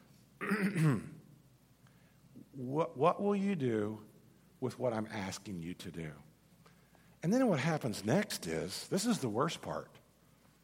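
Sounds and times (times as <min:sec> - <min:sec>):
person clearing throat: 0:00.4 - 0:01.2
speech: 0:00.6 - 0:01.2, 0:02.6 - 0:06.3, 0:07.2 - 0:10.0.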